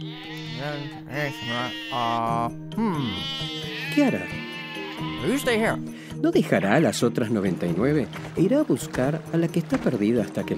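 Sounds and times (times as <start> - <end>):
speech: 0.0 - 4.4, 5.0 - 10.5
sheep bleating: 0.0 - 5.8, 6.4 - 7.5.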